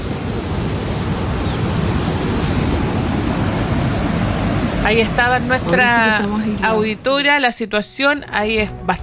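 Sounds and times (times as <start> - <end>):
rushing water of an overflowing canal: 0.0 - 7.0
speech: 4.9 - 9.0.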